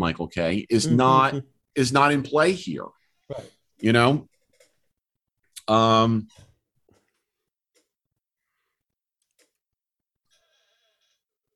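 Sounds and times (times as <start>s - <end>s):
speech: 0.0s - 4.3s, 5.7s - 6.5s
chair squeaking: 4.3s - 4.8s, 6.2s - 7.2s.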